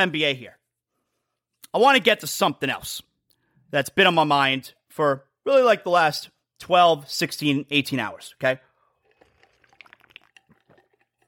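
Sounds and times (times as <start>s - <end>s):
speech: 0.0s - 0.6s, 1.7s - 3.1s, 3.7s - 8.7s
faint liquid gurgles: 8.8s - 11.2s
slurping sips of vitamin water: 8.8s - 11.2s.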